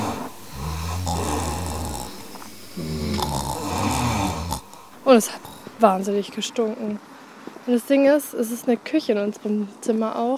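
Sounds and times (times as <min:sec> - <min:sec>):
men snoring while sleeping at night in an eight-bed room: 0:00.0 - 0:06.1
speech: 0:05.1 - 0:07.1, 0:07.7 - 0:10.3.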